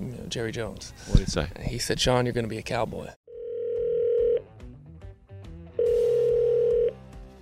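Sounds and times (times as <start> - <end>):
speech: 0.3 - 3.2
phone call electronic ring tones: 3.3 - 4.4, 5.8 - 7.0.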